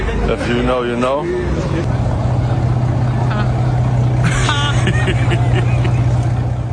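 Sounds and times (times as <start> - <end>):
powerful supercar engine rumbling and revving: 0.0 - 6.7
speech: 0.3 - 2.2
laughter: 3.1 - 6.6.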